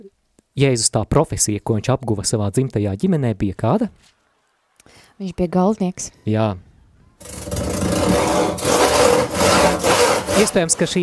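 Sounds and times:
speech: 0.0s - 4.2s, 5.2s - 8.2s, 10.4s - 11.0s
hand saw cutting through wood in a carpentry workshop: 7.2s - 11.0s.

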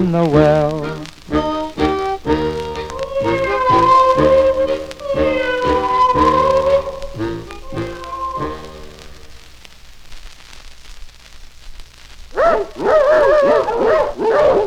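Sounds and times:
speech: 0.0s - 1.4s
several dogs barking loudly in yelping bursts: 2.6s - 8.8s, 12.4s - 14.6s.

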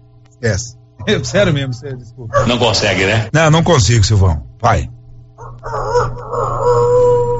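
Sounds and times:
low steady hum: 0.0s - 7.3s
speech: 0.4s - 5.0s
person imitating a distant rooster crowing: 5.6s - 7.3s.

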